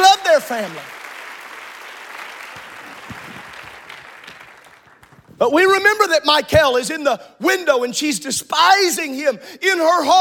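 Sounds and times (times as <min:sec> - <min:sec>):
audience clapping: 0:00.0 - 0:05.4
speech: 0:00.4 - 0:01.0, 0:05.4 - 0:10.1.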